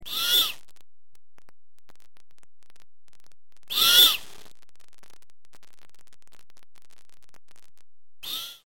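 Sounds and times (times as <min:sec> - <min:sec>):
Great Horned owl chick begging calls: 0:00.0 - 0:00.6, 0:03.7 - 0:04.2.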